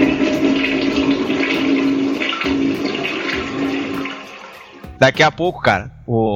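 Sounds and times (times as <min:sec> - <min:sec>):
toilet flushing: 0:00.0 - 0:05.0
speech: 0:05.0 - 0:06.3.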